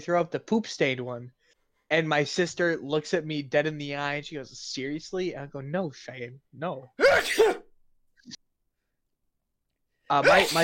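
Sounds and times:
speech: 0.0 - 7.6, 10.1 - 10.6
person sneezing: 7.0 - 7.7, 10.2 - 10.6.

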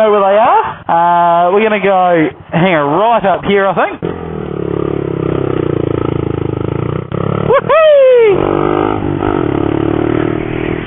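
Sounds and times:
speech: 0.0 - 4.2
125cc single-cylinder motorcycle with large exhaust revving hard as it is ridden off: 1.4 - 10.8
loud rasping exhaust of 125cc single-cylinder motorcycle: 3.9 - 10.8.

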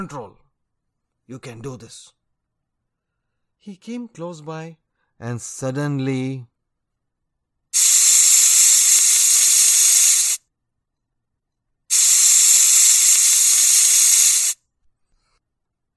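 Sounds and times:
speech: 0.0 - 0.4, 1.3 - 2.2, 3.6 - 6.5, 7.7 - 8.0
pressure cooker whistle releasing hissing steam: 7.8 - 10.4, 11.9 - 14.6.

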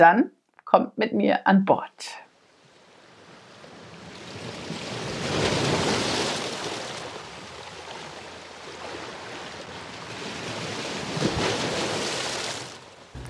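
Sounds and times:
speech: 0.0 - 2.2
harbor water lapping and surging against the shore: 2.6 - 13.2.

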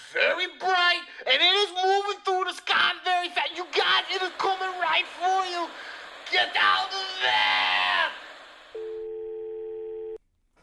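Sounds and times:
laughter: 1.4 - 9.2
phone line crackling with hissing static: 8.8 - 10.2.

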